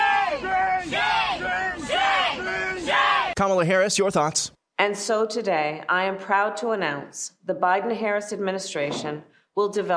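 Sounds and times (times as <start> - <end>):
crowd chanting in unison to shout down a group of students: 0.0 - 3.4
speech: 3.4 - 9.9.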